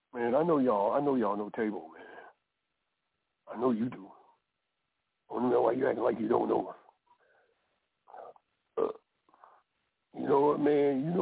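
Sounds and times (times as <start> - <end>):
speech: 0.2 - 2.0, 3.5 - 4.1, 5.3 - 6.8, 8.8 - 9.0, 10.1 - 11.1
man belching: 8.1 - 9.1.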